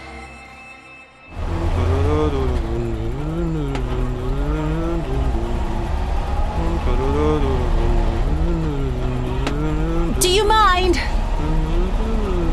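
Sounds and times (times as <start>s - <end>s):
constant low rumble of a car engine: 1.3s - 12.5s
person humming a bouncy Russian folk melody: 1.4s - 5.7s, 6.6s - 10.2s, 11.4s - 12.5s.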